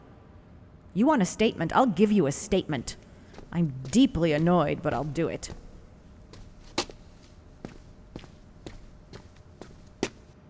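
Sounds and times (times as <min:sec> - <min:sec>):
speech: 0:01.0 - 0:05.6
unhurried footsteps on a hard surface: 0:03.2 - 0:10.4.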